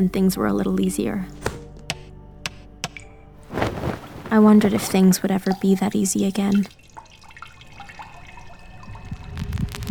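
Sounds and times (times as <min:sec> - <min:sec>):
speech: 0:00.0 - 0:01.5, 0:04.3 - 0:06.8
leaky faucet dripping in a bathroom: 0:05.3 - 0:09.5.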